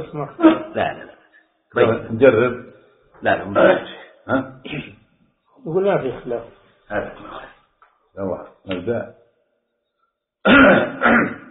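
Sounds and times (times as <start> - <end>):
speech: 0.0 - 5.0, 5.6 - 7.6, 8.2 - 9.2, 10.4 - 11.3
man coughing and clearing throat: 0.3 - 1.2, 3.6 - 4.9, 10.5 - 11.4.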